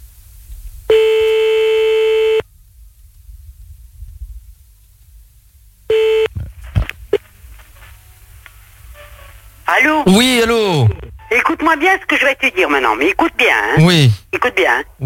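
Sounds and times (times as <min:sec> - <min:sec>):
telephone tone while calling back: 0:00.9 - 0:02.4, 0:05.9 - 0:06.3
speech: 0:09.8 - 0:15.0.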